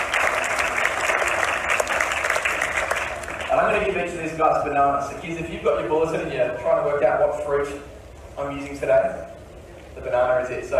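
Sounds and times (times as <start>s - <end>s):
dense audience applause: 0.0s - 3.8s
speech: 3.7s - 9.3s, 10.0s - 10.7s.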